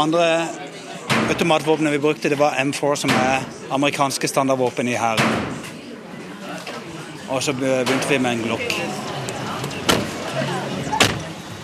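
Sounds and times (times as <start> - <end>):
speech: 0.0 - 5.6, 7.3 - 9.1
faint murmuring voices: 0.0 - 11.6
car door slams as people get into a car in Los Angeles in the evening: 9.9 - 10.2, 10.9 - 11.3.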